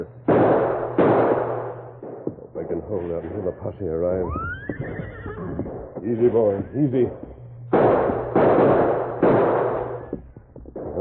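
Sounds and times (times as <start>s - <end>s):
gunshots in an old Western radio drama shootout: 0.2s - 2.7s, 7.0s - 10.2s
speech: 2.9s - 8.0s.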